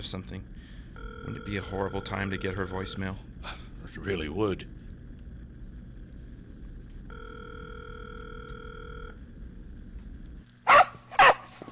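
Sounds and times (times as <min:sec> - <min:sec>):
speech: 0:00.0 - 0:00.6, 0:01.2 - 0:04.8
low quiet hum: 0:00.0 - 0:11.7
pet dog barking: 0:10.7 - 0:11.6.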